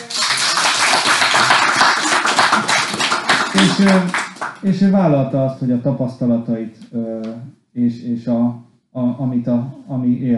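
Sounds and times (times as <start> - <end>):
crowd applauding: 0.0 - 4.7
speech: 3.6 - 10.3.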